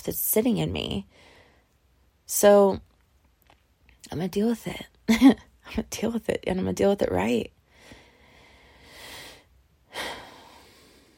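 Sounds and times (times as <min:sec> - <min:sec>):
speech: 0:00.0 - 0:01.3, 0:02.3 - 0:02.9, 0:04.1 - 0:07.6
person breathing slowly and deeply to steady themselves: 0:07.6 - 0:11.1.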